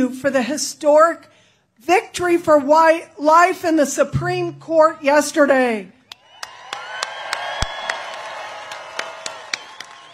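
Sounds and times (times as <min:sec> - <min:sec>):
speech: 0:00.0 - 0:06.0
crowd cheering and whooping after a speech: 0:06.1 - 0:10.1
sharp claps: 0:06.1 - 0:10.1.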